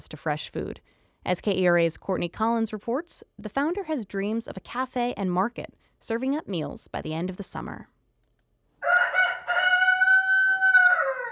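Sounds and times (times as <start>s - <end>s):
speech: 0.0s - 7.9s
rooster crowing: 8.8s - 11.3s.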